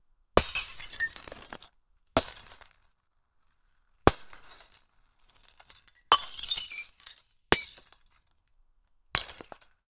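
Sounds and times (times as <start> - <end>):
muffled glass breaking: 0.4 - 2.8, 4.1 - 8.3, 9.2 - 9.7.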